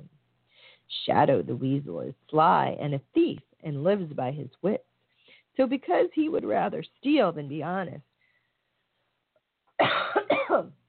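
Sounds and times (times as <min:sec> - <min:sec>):
speech: 0:00.9 - 0:04.9, 0:05.6 - 0:08.1, 0:10.5 - 0:10.8
person coughing harshly: 0:09.8 - 0:10.8.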